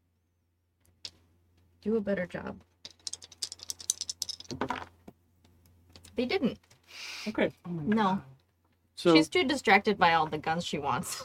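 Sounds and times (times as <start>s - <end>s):
speech: 1.8s - 2.7s, 6.2s - 8.3s, 9.0s - 11.2s
dice shaken and rolled across a table: 2.8s - 5.2s.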